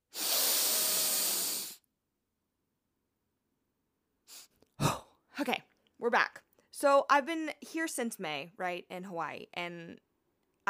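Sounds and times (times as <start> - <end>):
deep breath: 0.0 - 1.8
speech: 5.4 - 10.1.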